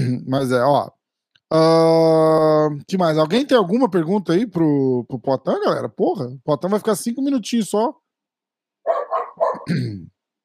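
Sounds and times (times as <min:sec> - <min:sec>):
speech: 0:00.2 - 0:08.0, 0:09.6 - 0:10.1
dog barking: 0:08.8 - 0:09.7.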